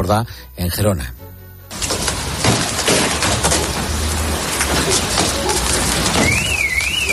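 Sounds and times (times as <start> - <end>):
speech: 0.0 - 1.2, 4.9 - 5.2
large tennis-ball size hailstones pounding down during a storm in Girona: 1.7 - 7.1
faint siren wailing: 5.4 - 7.1.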